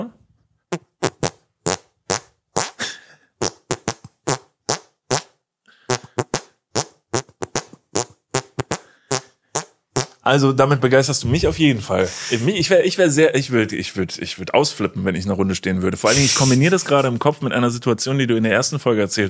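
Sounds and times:
squelchy hand farts playing a simple tune: 0.7 - 10.2, 16.1 - 16.6
speech: 10.3 - 19.2.

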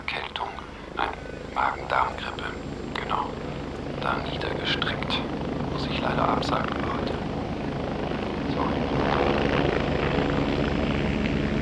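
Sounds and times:
helicopter hovering with rotor thudding and engine roar: 0.0 - 11.5.

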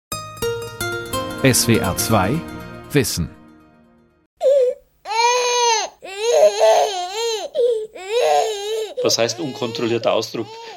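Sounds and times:
speech: 1.4 - 3.4, 9.0 - 10.7
very young infant wailing: 4.4 - 10.7.

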